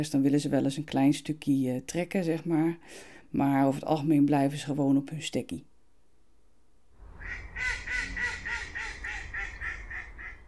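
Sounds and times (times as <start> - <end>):
speech: 0.0 - 5.7, 7.3 - 7.8
low rumble: 6.8 - 10.4
mallard ducks quacking: 7.0 - 10.4.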